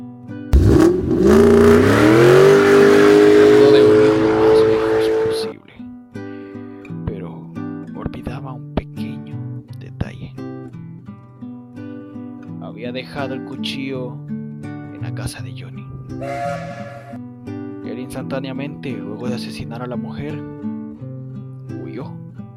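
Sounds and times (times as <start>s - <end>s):
car engine starting, revving and driving away: 0.6s - 5.5s
speech: 18.4s - 20.7s.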